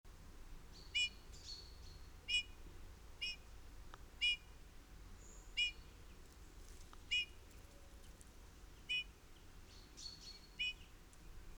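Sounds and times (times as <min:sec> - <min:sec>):
Eurasian bullfinch piping calls: 0:00.8 - 0:02.6, 0:03.2 - 0:03.4, 0:04.2 - 0:04.5, 0:05.2 - 0:05.9, 0:07.0 - 0:07.4, 0:08.8 - 0:10.9.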